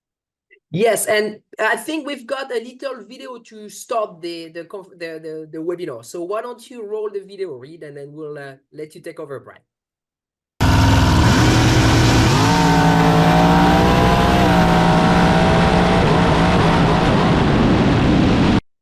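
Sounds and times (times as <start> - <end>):
speech: 0.7 - 9.7
carbureted car engine revving on a run: 10.6 - 18.0.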